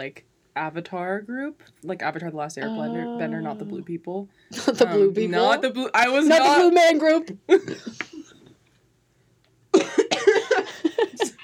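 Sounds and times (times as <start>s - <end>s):
speech: 0.0s - 8.1s
harsh coughing: 9.8s - 10.7s.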